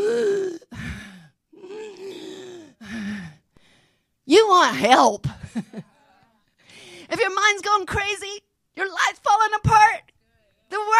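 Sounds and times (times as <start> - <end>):
person imitating heavy labored breathing with gasps and groans: 0.0 - 3.4
speech: 4.3 - 5.9, 7.1 - 10.0, 10.7 - 10.9.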